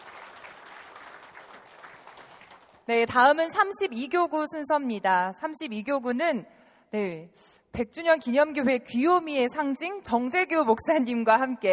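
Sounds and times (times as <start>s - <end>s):
church congregation applause: 0.0s - 2.9s
speech: 2.9s - 11.7s.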